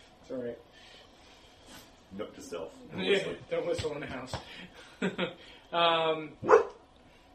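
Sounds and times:
speech: 0.3 - 0.9, 2.1 - 6.7
dog barking inside a house: 6.4 - 6.8.

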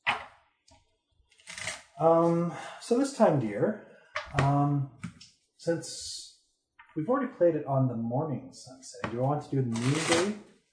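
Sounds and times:
speech: 2.0 - 5.0, 5.6 - 6.3, 7.0 - 10.5
tabletop game card decks being shuffled: 9.7 - 10.4.

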